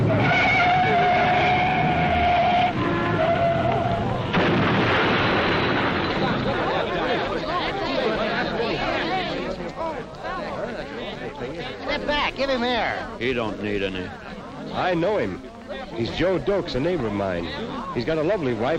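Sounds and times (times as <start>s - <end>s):
car tires squealing in a long high skid: 0.0s - 4.4s
crash of two cars coming from opposite directions: 0.0s - 7.3s
crowd of voices chattering excitedly: 0.0s - 18.7s
speech: 12.5s - 14.2s, 14.8s - 18.7s.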